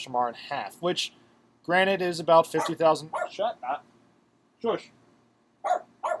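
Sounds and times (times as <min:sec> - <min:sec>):
speech: 0:00.0 - 0:03.9, 0:04.6 - 0:05.0
dog sitting on the floor barking: 0:02.6 - 0:03.8, 0:05.6 - 0:06.1.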